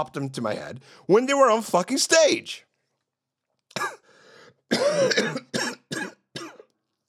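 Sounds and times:
speech: 0:00.0 - 0:02.7
raspy breath in: 0:00.8 - 0:01.1, 0:04.0 - 0:04.7
person coughing: 0:03.7 - 0:04.1, 0:04.7 - 0:06.7.

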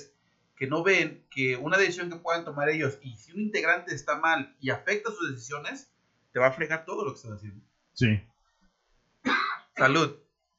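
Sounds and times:
speech: 0:00.6 - 0:08.3, 0:09.2 - 0:10.2
harsh choking throat-clearing cough: 0:09.3 - 0:09.8.

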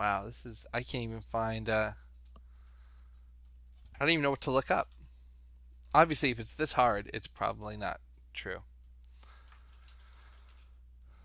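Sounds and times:
speech: 0:00.0 - 0:02.0, 0:04.0 - 0:05.0, 0:05.9 - 0:08.7
low hum: 0:00.0 - 0:11.2
computer keyboard typing: 0:02.2 - 0:05.0, 0:09.3 - 0:10.8.

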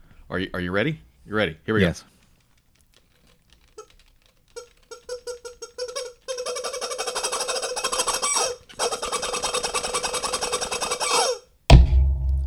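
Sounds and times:
speech: 0:00.3 - 0:02.2
rubber chicken toy squawking: 0:03.5 - 0:11.6.

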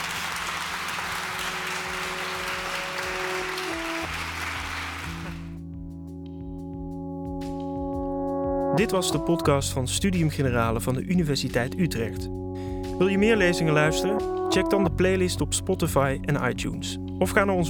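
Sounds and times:
audience applause after a lecture: 0:00.0 - 0:05.6
sustained musical tones: 0:01.3 - 0:09.8, 0:10.9 - 0:17.6
speech: 0:08.8 - 0:12.4, 0:13.0 - 0:17.6.

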